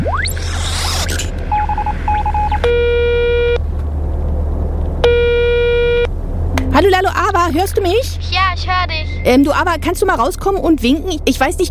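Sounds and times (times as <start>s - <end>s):
rising sweep tone of a telephone call: 0.0s - 2.7s, 5.9s - 10.3s
constant low hum: 0.0s - 11.6s
short telephone dialing beeps: 1.5s - 3.6s
speech: 7.0s - 11.6s.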